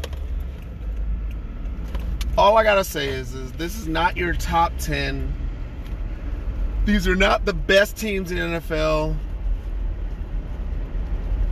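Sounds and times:
deep rumble of road and engine noise inside a moving car: 0:00.0 - 0:11.4
speech: 0:02.4 - 0:05.4, 0:06.8 - 0:09.3.

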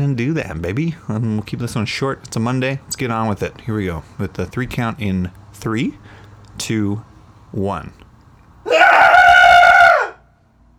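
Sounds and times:
speech: 0:00.0 - 0:08.0
group of voices screaming together cathartically: 0:08.7 - 0:10.2.

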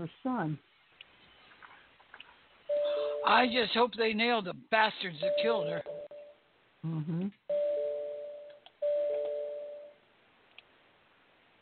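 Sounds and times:
speech: 0:00.0 - 0:00.7, 0:03.2 - 0:06.0, 0:06.8 - 0:07.5
doorbell-like two-tone computer alert chime: 0:02.7 - 0:03.7, 0:05.2 - 0:06.4, 0:07.5 - 0:09.9.

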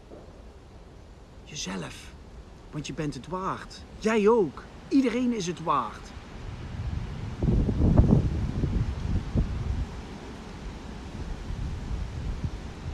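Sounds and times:
speech: 0:01.5 - 0:06.2
strong wind blowing: 0:05.8 - 0:12.9.

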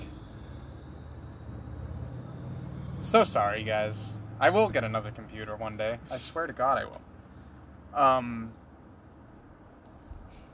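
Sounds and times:
beat-up old cars running at an old car show in a park: 0:00.0 - 0:10.5
speech: 0:03.0 - 0:07.1, 0:07.9 - 0:08.6.

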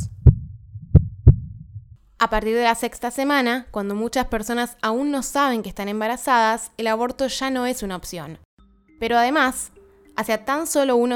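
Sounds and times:
heartbeat: 0:00.0 - 0:02.0
low whooshing rumble: 0:00.0 - 0:02.0
speech: 0:02.2 - 0:08.4, 0:09.0 - 0:11.1.

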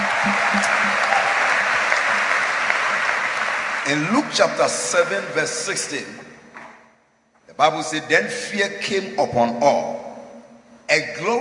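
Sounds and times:
church audience clapping for visiting pastors: 0:00.0 - 0:05.0
speech: 0:03.9 - 0:06.4, 0:07.6 - 0:10.0, 0:10.9 - 0:11.4.

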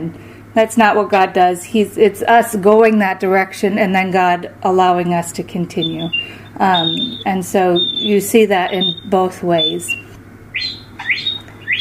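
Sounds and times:
speech: 0:00.0 - 0:10.7
low steady hum: 0:00.0 - 0:11.7
bird chirping in a backyard: 0:05.8 - 0:11.7.

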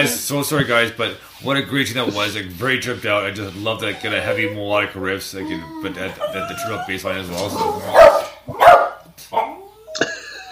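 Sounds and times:
speech: 0:00.0 - 0:08.6
dogs barking in sharp yaps: 0:03.7 - 0:04.8, 0:05.5 - 0:09.7
laughter: 0:09.9 - 0:10.5.

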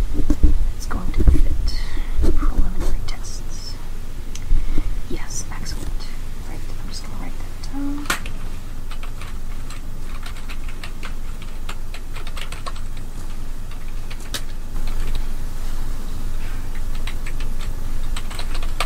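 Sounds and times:
low rumble: 0:00.0 - 0:18.8
fast typing on a computer keyboard: 0:08.9 - 0:13.0, 0:17.0 - 0:18.8.

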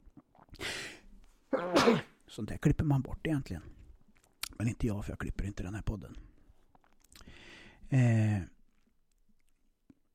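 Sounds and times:
sneeze: 0:01.5 - 0:02.2
speech: 0:01.8 - 0:03.8, 0:04.6 - 0:06.3, 0:07.9 - 0:08.5.

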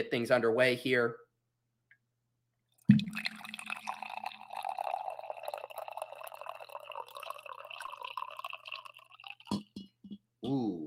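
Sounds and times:
speech: 0:00.0 - 0:01.2, 0:10.5 - 0:10.8
coffee pouring into a cup: 0:02.9 - 0:09.5.

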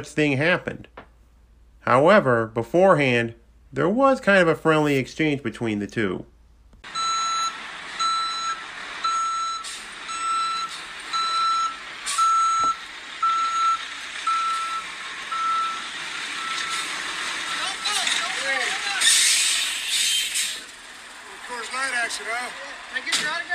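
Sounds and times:
speech: 0:00.0 - 0:00.9, 0:01.8 - 0:07.0
large beer truck engine driving into an arena: 0:06.8 - 0:23.5
large beer truck backup alarm beeping: 0:06.9 - 0:18.0.

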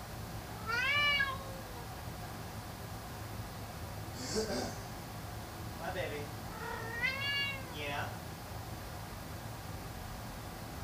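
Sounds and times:
steady low hum: 0:00.0 - 0:10.8
female pet cat giving a drawn-out meow: 0:00.6 - 0:01.9, 0:06.5 - 0:08.0
speech: 0:04.4 - 0:04.8.

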